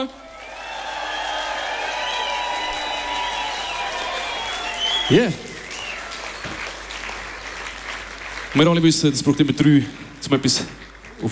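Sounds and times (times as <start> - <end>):
speech: 0.0 - 0.2, 5.1 - 5.5, 8.6 - 11.3
crowd cheers and whistles: 0.0 - 6.8
crowd applauding: 0.0 - 11.3.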